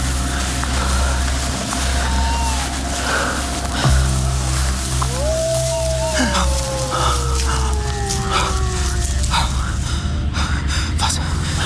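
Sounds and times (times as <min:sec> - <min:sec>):
night ambience on a moor: 0:00.0 - 0:11.6
steady low rumble of wind on a moor at night: 0:00.0 - 0:11.6
distant hound howling on the moor at night: 0:05.0 - 0:09.8.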